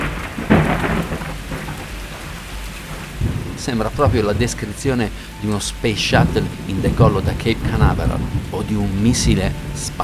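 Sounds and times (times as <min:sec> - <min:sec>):
deep rolls of thunder: 0:00.0 - 0:10.0
steady rain hissing: 0:00.0 - 0:10.0
speech: 0:03.6 - 0:10.0.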